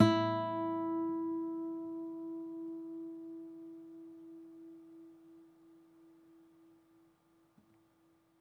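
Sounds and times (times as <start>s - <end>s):
classical guitar open strings: 0.0s - 6.7s.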